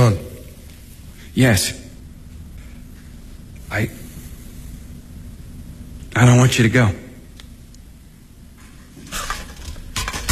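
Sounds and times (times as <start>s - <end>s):
speech: 0.1s - 0.3s, 1.4s - 1.8s, 3.7s - 4.0s, 6.2s - 7.0s
metal cooking pots clattering as they are handled: 9.0s - 10.3s.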